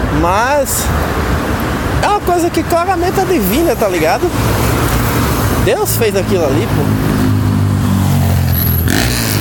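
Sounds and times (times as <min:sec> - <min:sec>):
speech: 0:00.2 - 0:01.3, 0:02.0 - 0:07.4
motorcycle roaring past: 0:06.8 - 0:09.4.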